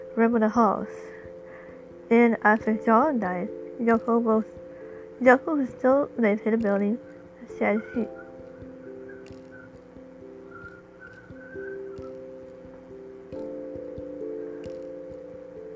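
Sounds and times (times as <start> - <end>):
droning hum of low tones: 0.0 - 15.7
speech: 0.2 - 1.2, 2.1 - 4.6, 5.2 - 8.2
soft clicks: 1.2 - 15.7
faint high whistle: 7.7 - 12.6.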